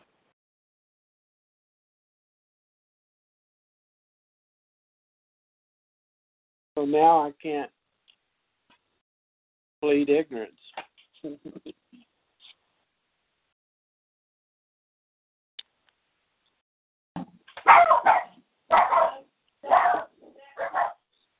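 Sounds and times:
speech: 6.8 - 7.8, 9.8 - 11.8, 17.6 - 19.2
dogs barking: 17.6 - 21.0.

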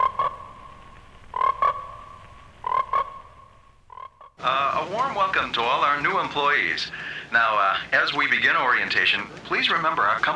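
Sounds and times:
frogs croaking: 0.0 - 4.5
speech: 4.4 - 10.3.

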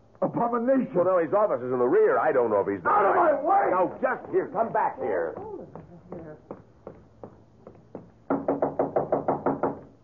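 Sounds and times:
speech: 0.3 - 5.5
knocking on a door: 5.2 - 10.0.

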